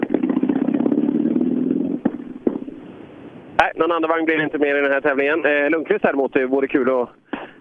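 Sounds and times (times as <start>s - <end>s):
racing car engine running roughly: 0.0s - 2.9s
speech: 3.6s - 7.2s.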